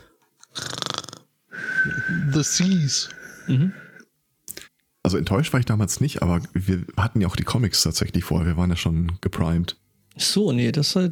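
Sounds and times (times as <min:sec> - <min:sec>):
person imitating cartoon-style snoring: 0:00.5 - 0:01.3, 0:03.2 - 0:04.0
speech: 0:01.8 - 0:03.9, 0:05.1 - 0:11.1.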